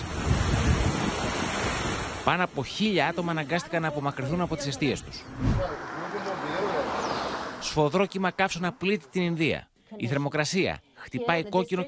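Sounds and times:
strong storm wind roaring: 0.0s - 2.2s, 5.0s - 7.8s
speech: 2.3s - 6.0s, 7.7s - 11.8s.

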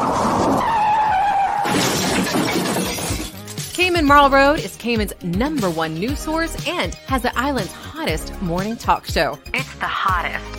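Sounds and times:
car tires screeching in a long skid: 0.0s - 1.8s
car crash: 0.0s - 3.4s
debris clattering down: 1.6s - 3.8s
glass shattering: 1.6s - 3.8s
speech: 4.0s - 10.5s.

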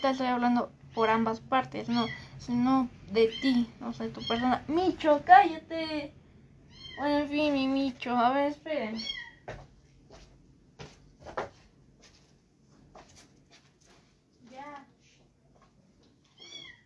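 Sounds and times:
speech: 0.0s - 6.2s, 7.0s - 9.6s
cat meowing insistently: 6.7s - 7.0s, 9.0s - 9.4s, 16.4s - 16.8s.

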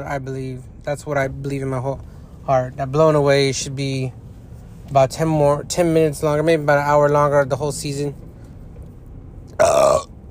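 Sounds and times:
speech: 0.0s - 4.2s, 4.9s - 8.3s
burp: 9.6s - 10.1s.

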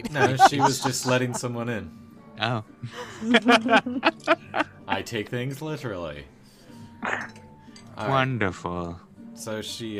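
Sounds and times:
laughter: 0.0s - 1.6s, 2.8s - 5.1s
speech: 0.0s - 6.4s, 7.0s - 7.4s, 8.0s - 9.9s
dishes and cutlery clinking while eating breakfast: 7.0s - 8.1s.

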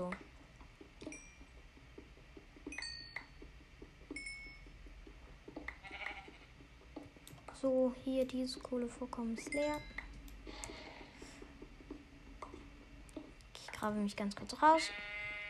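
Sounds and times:
light tapping and clinking: 0.1s - 7.5s
sheep bleating: 5.8s - 6.5s, 14.8s - 15.4s
speech: 7.6s - 10.0s, 13.8s - 15.1s.

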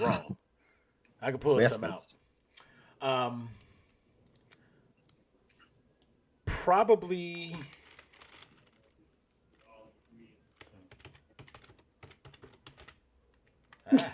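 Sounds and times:
speech: 0.0s - 0.4s, 1.2s - 2.2s, 3.0s - 3.6s, 6.6s - 7.8s, 13.9s - 14.1s
rustling: 7.4s - 10.9s
typing on a computer keyboard: 7.7s - 8.9s, 10.5s - 13.9s.

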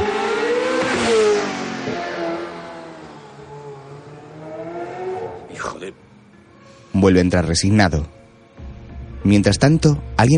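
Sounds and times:
Ferrari sports car engine revving and pulling away from a house: 0.0s - 5.5s
speech: 7.0s - 8.2s, 9.2s - 10.3s.

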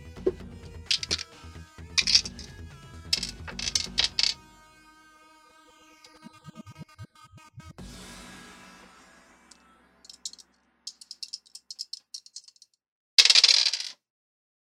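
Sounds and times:
two dice rattling across a hard surface for a D100 roll: 0.9s - 1.3s, 2.0s - 2.5s, 3.2s - 4.4s, 10.2s - 14.0s.

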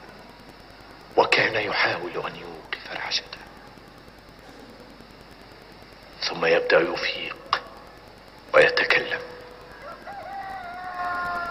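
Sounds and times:
speech: 1.5s - 3.5s, 6.3s - 7.4s
rooster crowing: 9.6s - 11.5s.

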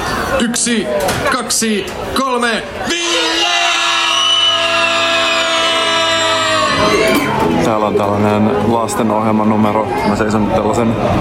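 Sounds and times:
speech: 0.3s - 3.8s, 6.9s - 11.1s
group of people shouting as loud as possible: 2.8s - 7.5s.

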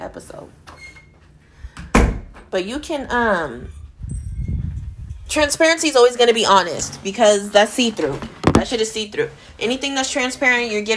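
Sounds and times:
speech: 0.1s - 0.6s, 2.5s - 3.8s, 5.3s - 10.9s
door swinging shut with a thud: 1.8s - 2.4s.

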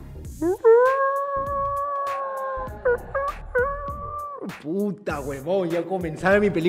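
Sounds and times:
person imitating foxes and wolves howling: 0.4s - 4.5s
speech: 4.6s - 6.6s.

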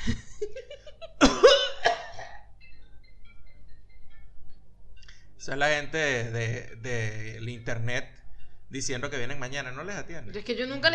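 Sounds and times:
faint noise: 0.0s - 10.9s
sharp raspy coughs: 1.2s - 2.4s
speech: 5.5s - 10.9s.

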